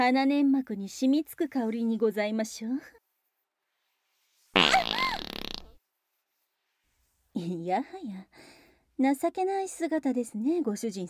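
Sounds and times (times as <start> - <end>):
speech: 0.0 - 3.0, 7.4 - 11.0
fart: 4.6 - 5.8.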